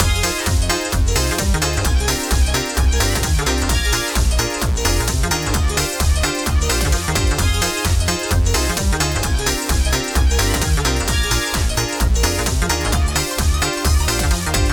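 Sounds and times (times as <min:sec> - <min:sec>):
swing beat: 0:00.0 - 0:14.7.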